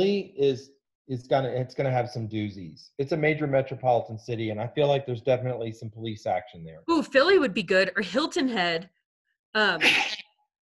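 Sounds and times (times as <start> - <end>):
speech: 0.0 - 10.2
person sneezing: 9.8 - 10.2.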